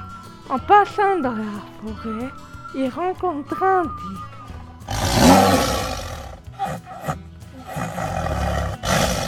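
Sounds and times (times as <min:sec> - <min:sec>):
speech: 0:00.6 - 0:04.3
tiger roaring and snarling: 0:04.9 - 0:09.2.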